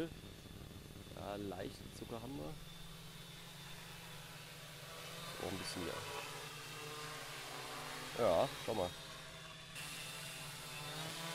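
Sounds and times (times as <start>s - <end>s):
speech: 0.0s - 0.2s, 1.2s - 2.7s, 5.4s - 6.3s, 8.2s - 9.0s
drone taking off and hovering, propellers whirring: 0.0s - 11.3s.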